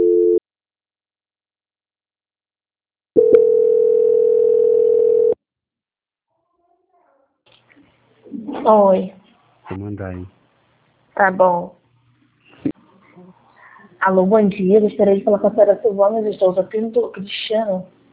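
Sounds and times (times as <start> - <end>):
telephone line tone while a call to a bank is transferred: 0.0 - 0.4, 3.2 - 5.4
speech: 8.7 - 10.4, 11.2 - 11.8, 14.0 - 18.0.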